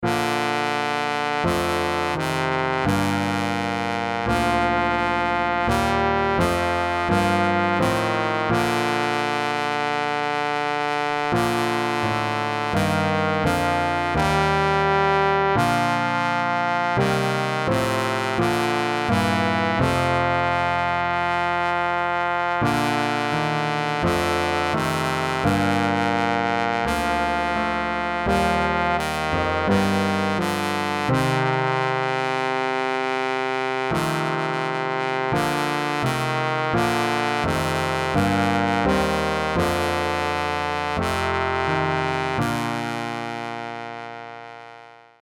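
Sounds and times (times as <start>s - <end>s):
solo trombone: 0.0s - 45.2s.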